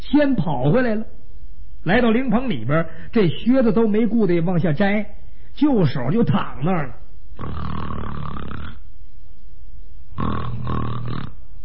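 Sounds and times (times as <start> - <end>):
speech: 0.1 - 1.2, 1.8 - 8.2
storyteller imitating loud rasping snoring: 7.4 - 8.8, 10.2 - 11.5.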